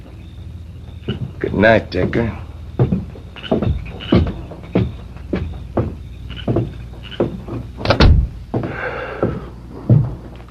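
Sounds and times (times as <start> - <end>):
speech: 1.0 - 2.4
door shutting with a solid thunk: 1.0 - 8.4
softer evenly spaced thuds: 2.0 - 10.4.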